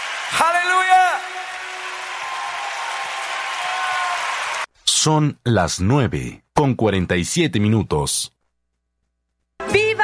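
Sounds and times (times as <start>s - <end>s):
crowd applauding: 0.0s - 4.7s
speech: 0.3s - 2.3s, 5.0s - 8.4s, 9.6s - 10.0s.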